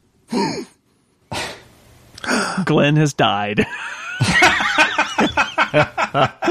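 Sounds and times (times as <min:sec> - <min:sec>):
rhythmic voiced wheezing gasps: 0:00.3 - 0:02.6
speech: 0:02.6 - 0:04.3, 0:05.2 - 0:06.4
laughter: 0:03.6 - 0:06.4.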